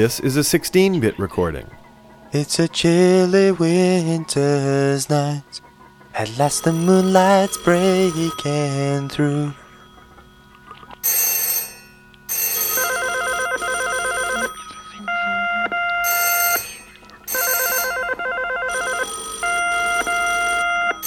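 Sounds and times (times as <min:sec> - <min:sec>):
speech: 0:00.0 - 0:05.6, 0:06.2 - 0:09.6
mobile phone repeating electronic ringtone: 0:06.2 - 0:21.0.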